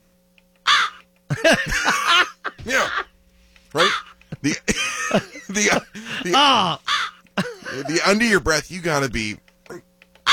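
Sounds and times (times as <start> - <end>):
person imitating crow caws: 0.7 - 1.0, 3.8 - 4.2, 5.6 - 7.9, 9.7 - 10.3
laughter: 1.3 - 3.1, 3.8 - 6.8, 7.4 - 8.2
speech: 3.7 - 4.7, 6.4 - 6.8, 7.8 - 9.4.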